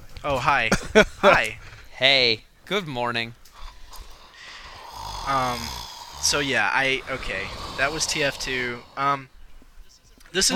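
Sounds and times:
speech: 0:00.2 - 0:03.4, 0:05.3 - 0:09.4, 0:10.3 - 0:10.5
person fake snoring: 0:03.6 - 0:09.3.

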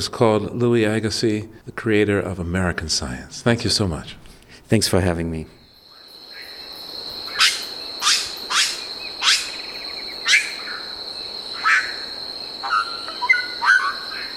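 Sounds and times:
speech: 0:00.0 - 0:05.6
high insect drone in a rainforest: 0:05.6 - 0:14.3
sharp chirping calls in a rainforest at dawn: 0:07.2 - 0:10.9, 0:11.6 - 0:14.3.

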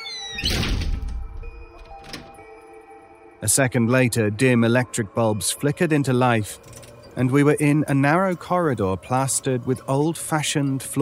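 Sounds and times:
heavy door thudding shut: 0:00.2 - 0:02.4
speech: 0:03.4 - 0:11.0.

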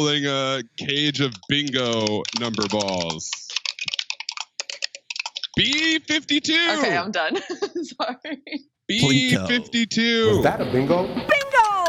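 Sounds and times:
speech: 0:00.0 - 0:03.5, 0:05.6 - 0:11.7
chunky computer keyboard typing: 0:00.8 - 0:06.8
laughter: 0:05.5 - 0:10.7.

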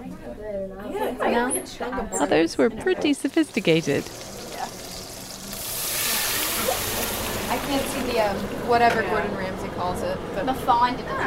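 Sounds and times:
speech: 0:00.6 - 0:04.3, 0:07.7 - 0:11.2
onions and meat sautéing in a pan: 0:03.0 - 0:09.3.

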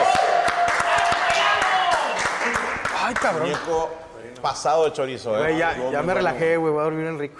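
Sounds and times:
people cheering: 0:00.0 - 0:03.6
crowd applauding at a gathering: 0:00.0 - 0:03.8
speech: 0:03.2 - 0:07.3.

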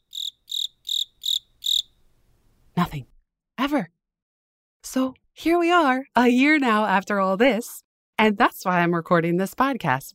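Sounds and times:
cricket chirping: 0:00.0 - 0:02.0
speech: 0:02.9 - 0:04.0, 0:04.8 - 0:10.1.

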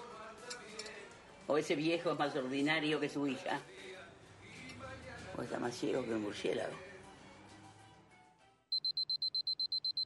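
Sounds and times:
speech: 0:01.5 - 0:03.8, 0:05.4 - 0:06.9
alarm clock ringing with rapid high-pitched electronic beeps: 0:08.7 - 0:10.0.

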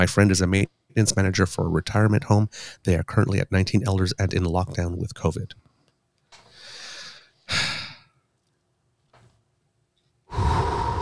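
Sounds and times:
speech: 0:00.0 - 0:05.6
slow deliberate breathing: 0:02.5 - 0:02.8, 0:06.5 - 0:08.0, 0:10.3 - 0:11.0.

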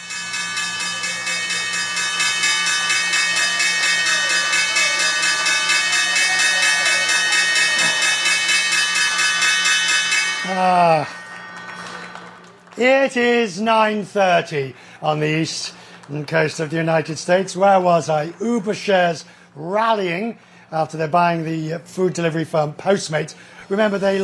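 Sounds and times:
stock exchange opening bell ringing: 0:00.0 - 0:13.4
speech: 0:12.8 - 0:24.2.

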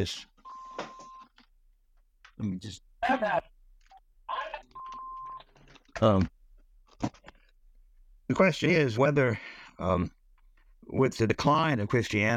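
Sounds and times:
speech: 0:00.0 - 0:00.3, 0:02.4 - 0:03.5, 0:06.0 - 0:06.4, 0:07.0 - 0:07.2, 0:08.3 - 0:10.2, 0:10.9 - 0:12.3
phone ringing with a steady electronic tone: 0:00.4 - 0:01.3, 0:04.7 - 0:05.5.

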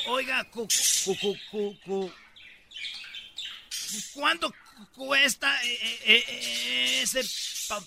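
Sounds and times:
small birds chirping in a pet shop: 0:00.0 - 0:07.8
speech: 0:00.1 - 0:02.2, 0:03.9 - 0:07.8.

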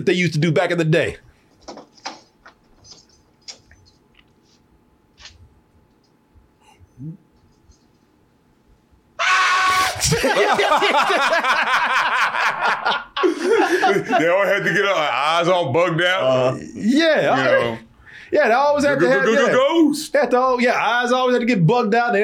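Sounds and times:
speech: 0:00.0 - 0:01.3, 0:13.9 - 0:22.2
man screaming in a movie clip: 0:09.2 - 0:10.5
laughter: 0:09.7 - 0:15.0.

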